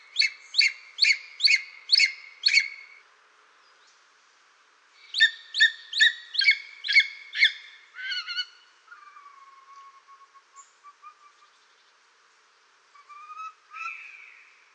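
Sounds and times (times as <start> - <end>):
Greater spotted eagle yelping call: 0.2 - 2.8, 5.0 - 11.6, 13.0 - 14.4.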